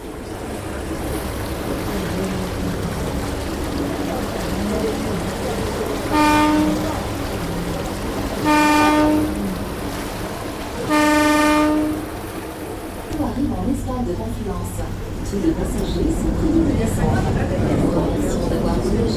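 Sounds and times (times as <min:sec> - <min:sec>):
faint voices: 0:00.0 - 0:19.1
river shuttle boat engine rumble: 0:00.0 - 0:19.1
river shuttle boat horn toots: 0:05.9 - 0:07.3, 0:07.9 - 0:09.8, 0:10.8 - 0:12.4.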